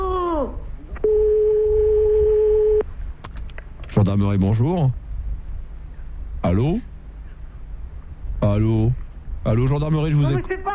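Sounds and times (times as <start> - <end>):
low hiss: 0.0 - 10.7
telephone ringback tone heard by the caller: 1.0 - 2.8
speech: 4.0 - 5.0, 6.5 - 6.9, 8.4 - 10.7.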